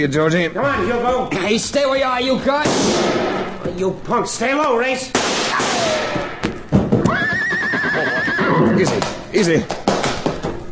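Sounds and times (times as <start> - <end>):
speech: 0.0 - 6.1, 8.8 - 9.8
horse neighing with a long shrill whinny: 7.0 - 9.0.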